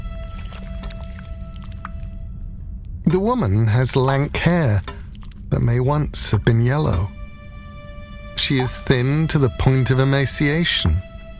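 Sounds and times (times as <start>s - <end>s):
green poison dripping from a huge snake's mouth: 0.0s - 2.9s, 4.2s - 6.2s
steady low rumble: 0.0s - 9.5s
faint hum: 0.0s - 9.8s
speech: 3.1s - 7.2s, 8.5s - 11.1s.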